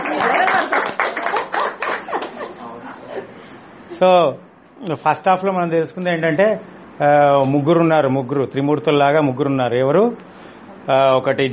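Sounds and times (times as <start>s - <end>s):
audience clapping at a talk: 0.0s - 2.6s
people laughing: 0.0s - 3.3s
speech: 4.0s - 10.3s, 10.9s - 11.5s.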